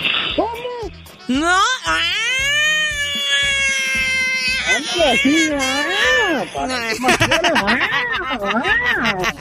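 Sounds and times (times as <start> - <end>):
steady low beat: 0.0 - 9.3
speech: 1.3 - 2.2, 4.7 - 9.3
person imitating a cat in heat yowling: 1.3 - 7.1
laughter: 4.8 - 9.3.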